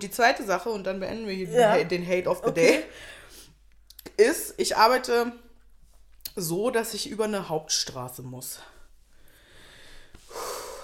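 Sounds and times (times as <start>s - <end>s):
speech: 0.0s - 3.2s, 4.2s - 5.4s, 6.4s - 8.8s
heavy breathing: 2.9s - 3.6s, 9.1s - 10.8s.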